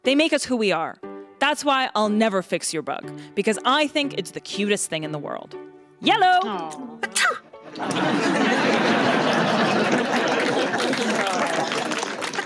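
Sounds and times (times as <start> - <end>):
speech: 0.0 - 10.5
sneeze: 7.0 - 7.4
laughter: 7.6 - 12.4.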